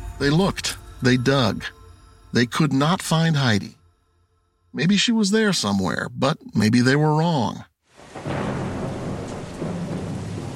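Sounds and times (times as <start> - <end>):
speech: 0.2 - 3.8, 4.7 - 8.3
heavy rain in Los Angeles: 7.8 - 10.5
low rolling rumble of thunder: 7.9 - 10.5.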